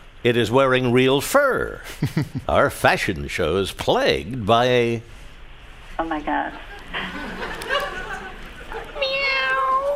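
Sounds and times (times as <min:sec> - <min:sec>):
speech: 0:00.2 - 0:05.2, 0:06.0 - 0:07.4
laughter: 0:01.9 - 0:02.5, 0:06.6 - 0:09.0
cat meowing: 0:09.0 - 0:09.9.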